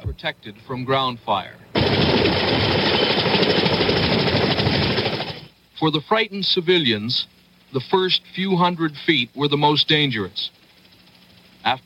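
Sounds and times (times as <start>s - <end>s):
speech: 0.2s - 5.2s, 5.8s - 10.6s, 11.6s - 11.8s
helicopter flying overhead during an evacuation from an embassy: 1.6s - 5.6s, 7.1s - 11.8s.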